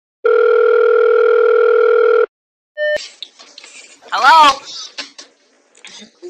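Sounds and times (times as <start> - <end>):
telephone dial tone: 0.2 - 2.3.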